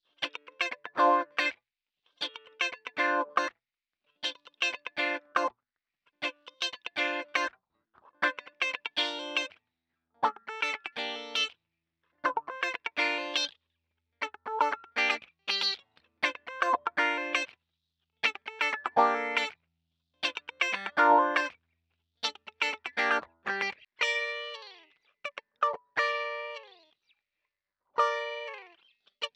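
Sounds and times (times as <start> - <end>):
wah-wah guitar loops in G minor: 0.2 - 1.5, 2.2 - 3.5, 4.2 - 5.5, 6.2 - 7.5, 8.2 - 9.5, 10.2 - 11.5, 12.2 - 13.5, 14.2 - 17.5, 18.2 - 19.5, 20.2 - 21.5, 22.2 - 24.8, 25.6 - 26.8, 28.0 - 28.7.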